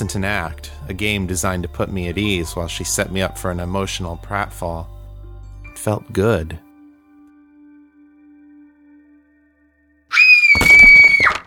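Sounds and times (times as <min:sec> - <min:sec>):
speech: 0:00.0 - 0:05.0, 0:05.8 - 0:06.7
loud piercing scream: 0:10.1 - 0:11.4.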